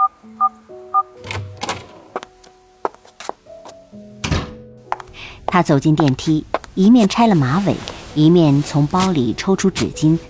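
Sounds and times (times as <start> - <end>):
mechanical clunks and thuds as the door is unlocked and opened: 1.2 - 2.1, 4.2 - 4.6
speech: 5.5 - 10.2.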